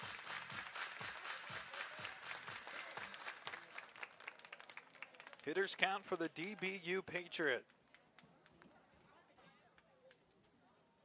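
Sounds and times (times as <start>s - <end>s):
baseball crowd clapping in rhythm: 0.0s - 8.6s
speech: 5.5s - 7.8s.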